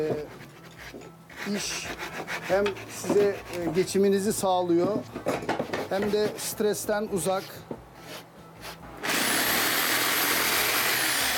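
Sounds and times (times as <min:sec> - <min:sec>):
speech: 0:00.0 - 0:07.7
soft scraping strokes: 0:00.2 - 0:04.0, 0:05.8 - 0:08.8
power sander running: 0:09.0 - 0:11.3.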